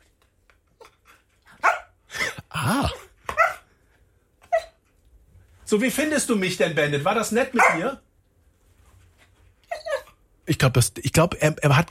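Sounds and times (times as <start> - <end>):
TV dog barking and yelping: 0.8 - 2.0, 2.9 - 3.7, 4.4 - 4.9, 7.5 - 8.0, 9.6 - 10.2
speech: 5.7 - 8.1, 10.6 - 11.8.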